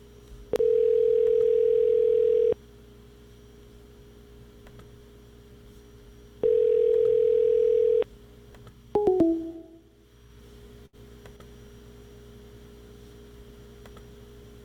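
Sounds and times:
telephone dial tone: 0.6s - 2.6s, 6.4s - 8.0s
click: 13.8s - 14.1s.

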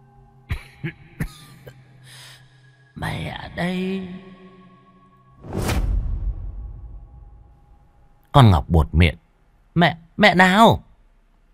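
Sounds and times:
dry coughs: 0.5s - 1.9s
speech: 0.8s - 1.4s, 3.0s - 4.3s, 8.4s - 9.2s, 9.8s - 10.9s.

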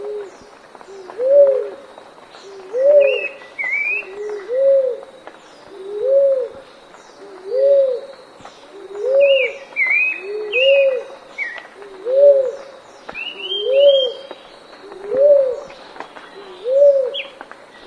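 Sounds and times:
dove song of paired low coos: 0.0s - 6.6s, 7.2s - 17.8s
small birds giving short twittering notes: 0.0s - 17.8s.

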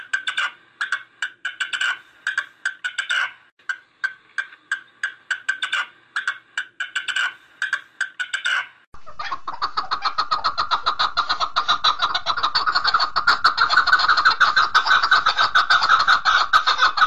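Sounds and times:
partridge rough chucking notes: 0.0s - 3.4s, 4.0s - 17.0s.

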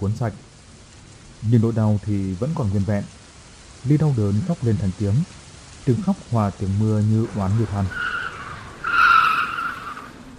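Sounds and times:
speech: 0.0s - 0.5s, 1.4s - 3.2s, 3.8s - 8.1s
luxury platinum car braking suddenly with skidding tyres: 7.2s - 10.3s.

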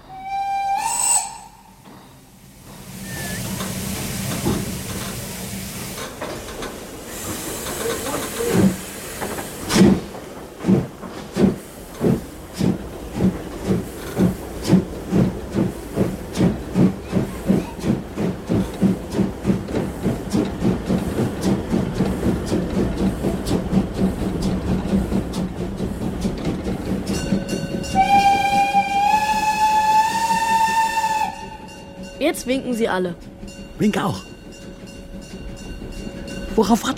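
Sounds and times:
steam locomotive shrill whistle: 0.0s - 1.8s, 3.0s - 3.5s, 27.9s - 31.9s
steam locomotive puffing chuffs: 0.0s - 32.0s
steam hissing as the train departs: 0.1s - 31.7s
speech: 32.3s - 34.3s, 36.6s - 36.9s.

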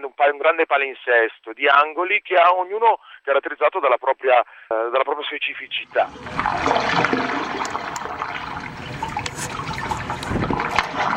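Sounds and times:
speech: 0.2s - 8.3s
water gurgling in a waterfront sound sculpture on the San Francisco Embarcadero: 5.6s - 11.1s.

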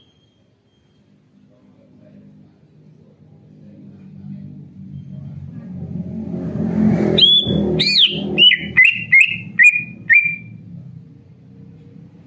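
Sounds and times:
engine rumble: 1.1s - 12.2s
greater green leafbird singing: 7.2s - 10.5s.

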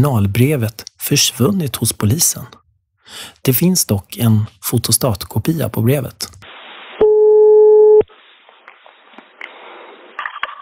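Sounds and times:
speech: 0.0s - 6.4s
telephone ringing tone during a call: 7.0s - 8.0s.

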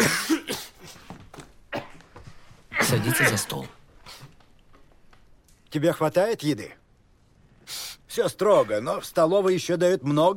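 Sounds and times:
young man coughing into a handkerchief: 0.0s - 0.9s, 1.7s - 2.1s
speech: 2.9s - 3.8s, 5.7s - 6.8s, 7.7s - 10.3s.

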